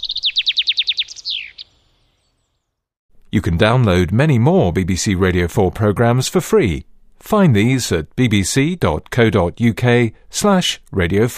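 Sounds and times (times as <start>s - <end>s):
chaffinch singing: 0.0s - 2.7s
speech: 3.3s - 11.3s.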